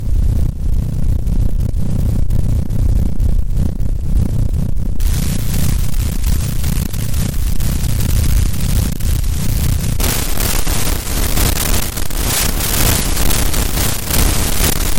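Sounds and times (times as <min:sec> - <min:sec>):
noisy line: 0:00.0 - 0:14.9.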